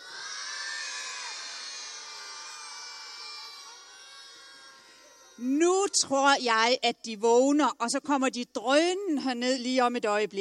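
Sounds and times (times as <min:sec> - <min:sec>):
large group of voices at a tent camp shouting good morning in unison: 0:00.0 - 0:05.4
speech: 0:05.4 - 0:10.4.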